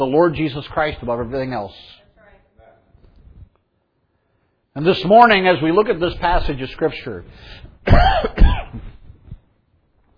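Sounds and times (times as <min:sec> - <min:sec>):
speech: 0:00.0 - 0:02.0, 0:04.8 - 0:08.9
man clearing throat during a sermon: 0:07.9 - 0:09.0.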